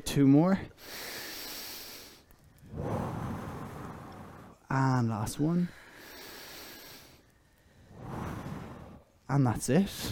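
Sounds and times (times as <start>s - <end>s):
speech: 0.2s - 1.0s, 4.7s - 5.8s, 9.3s - 10.1s
breath in through the nose and out through the mouth during an exercise: 0.7s - 4.6s, 5.6s - 9.2s.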